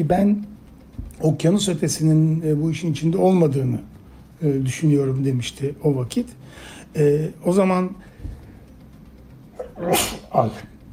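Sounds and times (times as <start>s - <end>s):
speech: 0.0s - 0.6s, 1.2s - 8.4s, 9.8s - 10.7s
person sneezing: 9.7s - 10.3s.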